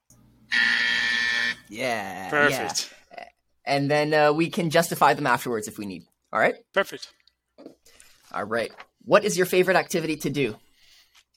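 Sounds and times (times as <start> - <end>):
loud harsh game show buzzer: 0.5 - 1.7
speech: 1.7 - 3.0, 3.7 - 10.6.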